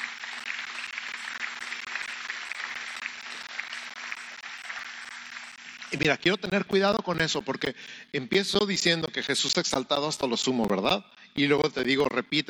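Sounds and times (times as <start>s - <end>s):
congregation applauding: 0.0s - 7.7s
speech: 5.9s - 12.4s.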